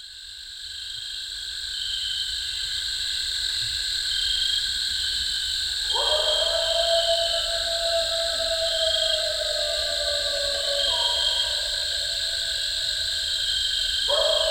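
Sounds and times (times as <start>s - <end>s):
shrill insect chorus: 0.0s - 14.4s
eastern coyote howling: 5.9s - 14.4s.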